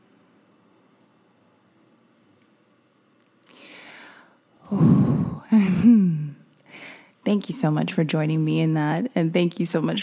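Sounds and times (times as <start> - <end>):
slow deep breaths taken to get centered: 3.5 - 5.5, 6.6 - 7.2
speech: 4.7 - 5.1, 7.3 - 10.0.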